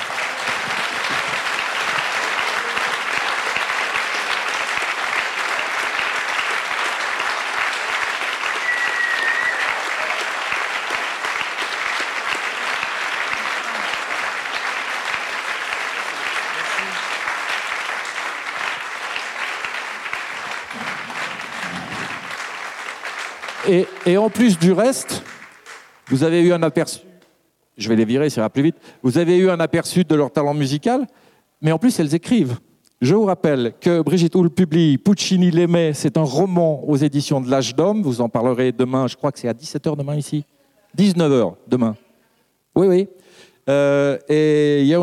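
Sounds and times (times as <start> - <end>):
large audience applause at an evening performance: 0.0 - 26.3
speech: 23.7 - 25.2, 26.1 - 27.1, 27.8 - 42.0, 42.8 - 45.0.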